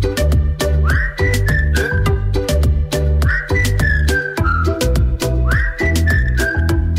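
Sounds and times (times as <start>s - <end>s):
loud full backing track with thumping beat and bass: 0.0s - 6.9s
person whistling a melody in short gliding phrases: 0.7s - 2.5s, 3.2s - 6.9s.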